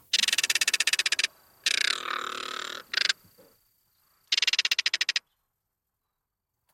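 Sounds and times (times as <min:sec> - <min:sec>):
crested caracara harsh rapid rattling and grating rasp calls: 0:00.0 - 0:03.3, 0:04.3 - 0:05.3.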